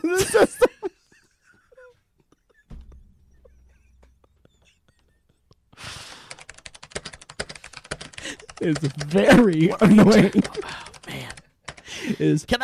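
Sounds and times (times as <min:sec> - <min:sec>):
laughter: 0:00.0 - 0:05.8, 0:08.2 - 0:11.3
rapid typing on a computer keyboard filling out a form: 0:06.2 - 0:11.9
speech: 0:08.6 - 0:10.8, 0:12.2 - 0:12.6.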